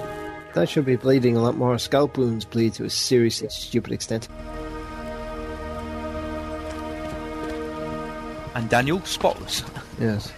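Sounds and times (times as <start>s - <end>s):
speech: 0.5s - 4.5s, 8.6s - 10.3s
steady rain pouring down: 4.4s - 10.3s.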